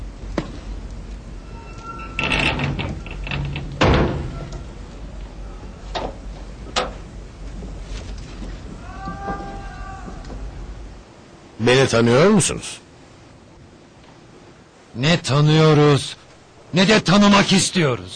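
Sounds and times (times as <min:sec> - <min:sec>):
low steady rumble: 0:00.0 - 0:16.9
door scraping as it swings: 0:01.4 - 0:04.8
door shutting with a heavy thud: 0:02.2 - 0:04.7
speech: 0:11.7 - 0:12.8, 0:15.0 - 0:18.1.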